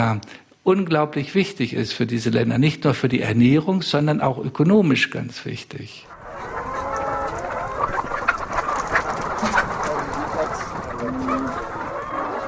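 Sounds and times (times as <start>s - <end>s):
speech: 0.0s - 6.2s
large flock of chickens clucking and squawking: 6.0s - 12.4s.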